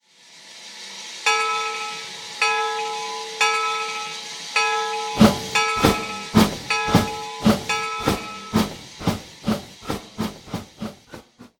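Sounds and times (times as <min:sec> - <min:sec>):
steam bell: 0:01.3 - 0:08.8.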